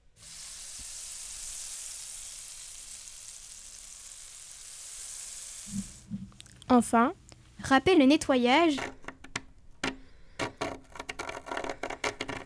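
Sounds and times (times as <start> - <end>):
omelette mixture frying in a pan: 0.0 - 8.0
speech: 6.7 - 9.0.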